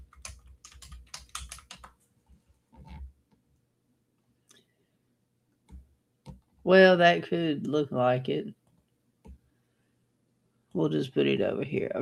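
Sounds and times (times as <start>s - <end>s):
clicky typing on a computer keyboard: 0.0s - 2.0s
speech: 6.7s - 8.6s, 10.8s - 12.0s.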